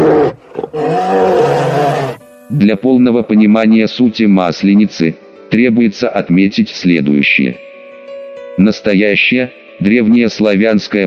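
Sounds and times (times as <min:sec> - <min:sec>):
bear roaring: 0:00.0 - 0:02.2
speech: 0:02.5 - 0:07.7, 0:08.6 - 0:11.0.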